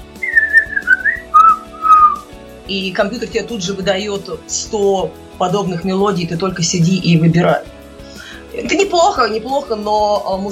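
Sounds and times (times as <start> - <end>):
person whistling a short melody: 0.2 - 2.2
speech: 2.7 - 7.7, 9.0 - 10.5.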